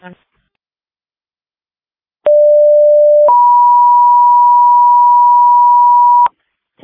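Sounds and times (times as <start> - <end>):
two-tone fire dispatch pager alert: 2.3 - 6.3.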